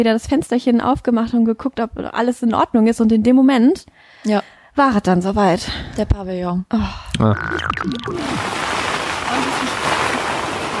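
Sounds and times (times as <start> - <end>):
speech: 0.0 - 8.7
rain starting during a storm: 7.8 - 10.7.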